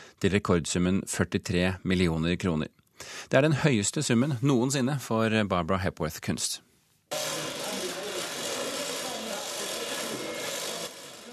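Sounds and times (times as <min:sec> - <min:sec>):
speech: 0:00.2 - 0:06.7
power tool grinding while craftsmen crate a sculpture in London: 0:07.1 - 0:11.3.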